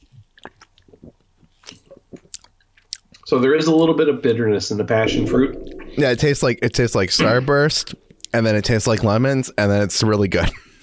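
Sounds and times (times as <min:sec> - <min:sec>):
lip smacks: 0:00.0 - 0:03.2
sipping a drink and swallowing: 0:00.0 - 0:03.2
speech: 0:03.3 - 0:10.7.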